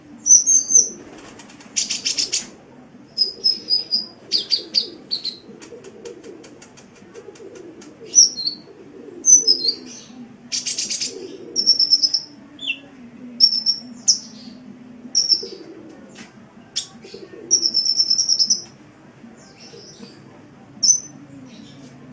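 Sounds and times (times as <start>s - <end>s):
faint low background hum: 0.0s - 22.1s
Oriental magpie-robin song with trilled whistles and slurred notes: 0.2s - 1.0s, 1.8s - 2.5s, 3.2s - 5.4s, 8.1s - 15.6s, 16.8s - 18.8s, 19.4s - 22.1s.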